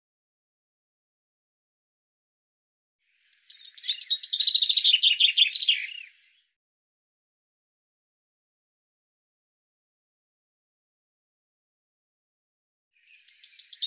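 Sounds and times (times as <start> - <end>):
common chaffinch singing: 3.2 - 6.5, 13.0 - 13.8.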